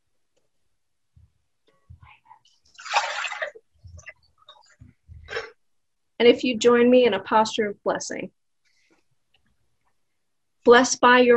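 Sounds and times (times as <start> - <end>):
water being poured into a baptismal font: 2.7 - 4.6
speech: 6.2 - 8.4, 10.6 - 11.3.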